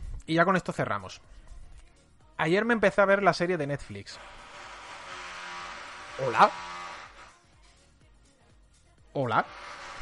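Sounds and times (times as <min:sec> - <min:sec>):
speech: 0:00.3 - 0:01.4, 0:02.4 - 0:04.4, 0:06.2 - 0:06.7, 0:09.2 - 0:09.8
power drill whining: 0:04.2 - 0:07.4, 0:09.3 - 0:10.0.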